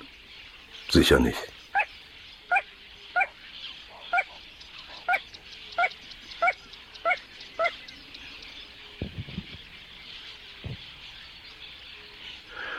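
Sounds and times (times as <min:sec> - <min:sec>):
speech: 0:00.9 - 0:01.6
little crake Porzana parva calling: 0:01.7 - 0:01.9, 0:02.5 - 0:07.8.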